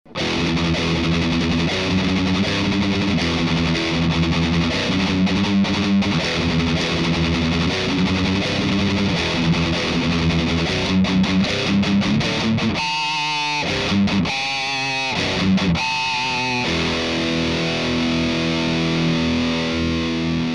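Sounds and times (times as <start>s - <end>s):
LTD M1000 metal rhythm guitar: 0.1s - 20.5s.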